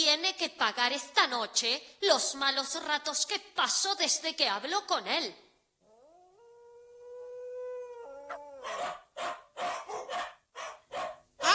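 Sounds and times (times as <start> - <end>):
speech: 0.1 - 5.4
dogs howling: 5.9 - 10.8
dogs barking loudly and sharply: 8.3 - 11.4.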